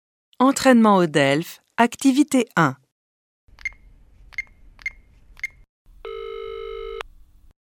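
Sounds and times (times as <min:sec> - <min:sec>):
speech: 0:00.4 - 0:02.8
telephone ringing for an incoming call: 0:06.0 - 0:07.0.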